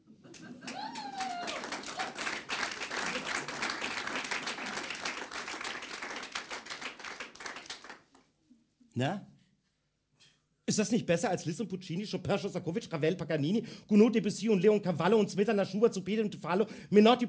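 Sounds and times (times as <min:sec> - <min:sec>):
concert audience applauding: 0:00.3 - 0:08.2
audience shouts and whoops: 0:00.6 - 0:02.3
speech: 0:09.0 - 0:09.3, 0:10.7 - 0:17.2.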